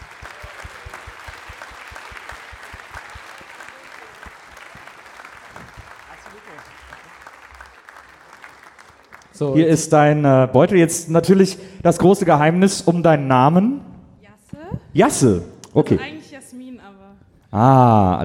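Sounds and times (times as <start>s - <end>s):
audience applause: 0.0s - 10.2s
speech: 9.4s - 13.8s, 14.9s - 16.2s, 17.5s - 18.2s.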